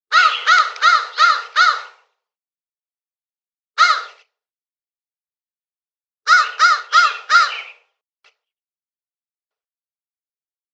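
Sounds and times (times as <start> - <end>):
crow cawing with harsh rasping notes: 0.1 - 2.1, 3.8 - 4.2, 6.3 - 7.8.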